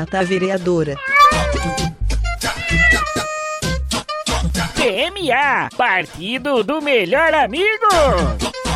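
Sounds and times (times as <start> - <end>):
speech: 0.0 - 2.0, 4.8 - 8.6
cat meowing: 0.0 - 3.5.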